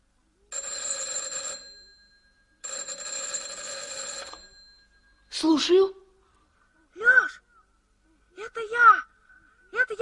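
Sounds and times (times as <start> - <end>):
telephone bell ringing in clattering bursts: 0.5 - 5.3
speech: 5.4 - 6.0.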